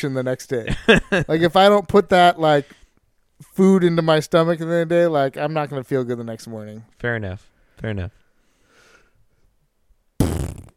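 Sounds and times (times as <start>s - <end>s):
speech: 0.0s - 2.8s, 3.6s - 8.2s
buzzy rumbling fart-like noise: 10.2s - 10.7s.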